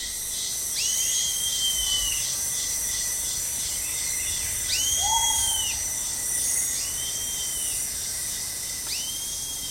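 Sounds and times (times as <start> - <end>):
male cricket stridulating by rubbing its wings together: 0.0 - 9.6.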